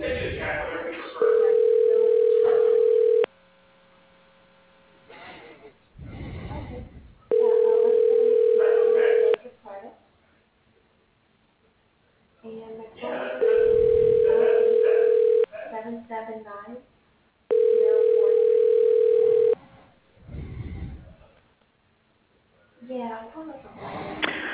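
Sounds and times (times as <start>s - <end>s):
voices over a telephone connection: 0.0s - 2.8s, 5.1s - 9.5s, 12.9s - 15.8s
phone line ring tone over a telephone connection during a call transfer: 1.2s - 3.3s, 7.3s - 9.4s, 13.4s - 15.5s, 17.5s - 19.6s.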